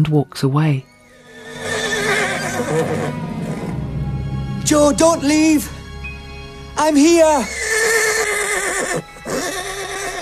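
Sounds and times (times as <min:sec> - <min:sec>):
speech: 0:00.0 - 0:00.9, 0:02.6 - 0:03.3, 0:04.6 - 0:05.8, 0:06.8 - 0:07.8
horse neighing: 0:00.9 - 0:03.8, 0:07.4 - 0:10.2.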